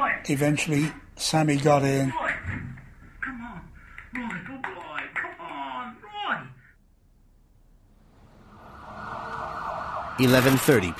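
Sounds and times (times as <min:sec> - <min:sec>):
speech: 0:00.2 - 0:02.6, 0:10.2 - 0:10.9
low traffic rumble: 0:07.4 - 0:10.9
ambulance siren wailing: 0:08.4 - 0:10.9.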